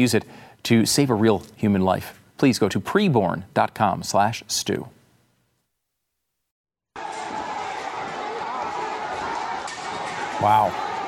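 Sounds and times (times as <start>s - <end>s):
speech: 0.0s - 5.0s, 10.4s - 10.8s
roar of a huge crowd rushing through knocked-down barriers: 7.0s - 11.0s.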